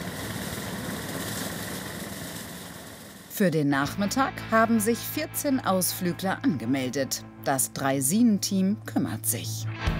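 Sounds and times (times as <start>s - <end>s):
homemade lawnmower engine running: 0.0s - 3.4s
speech: 3.4s - 9.9s.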